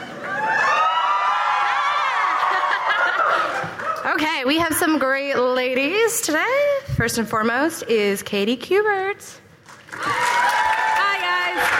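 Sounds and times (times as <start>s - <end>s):
live audience cheering with whoops and shouts: 0.0s - 4.0s, 9.9s - 11.7s
audience laughter: 2.3s - 3.9s
speech: 4.4s - 9.4s.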